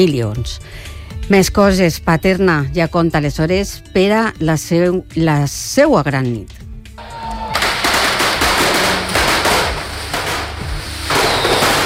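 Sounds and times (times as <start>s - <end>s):
speech: 0.0s - 6.7s
firecracker rockets bursting, crackling and popping: 7.5s - 11.8s.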